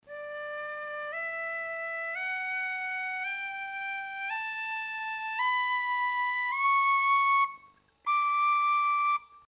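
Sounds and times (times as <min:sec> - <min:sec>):
musical scale in D: 0:00.0 - 0:09.4.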